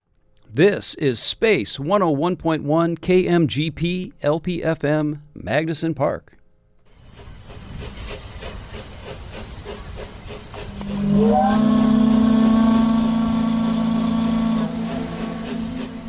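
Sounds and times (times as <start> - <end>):
speech: 0.5 - 6.4
hissing chugging steam machinery: 6.9 - 16.0
steamboat whistle blowing: 10.5 - 16.0.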